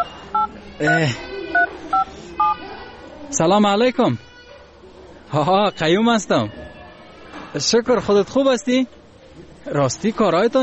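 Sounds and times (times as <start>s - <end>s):
telephone keypad tones as a number is dialed: 0.0s - 1.0s
speech: 0.8s - 1.3s, 3.3s - 4.3s, 5.3s - 6.6s, 7.5s - 9.0s, 9.7s - 10.6s.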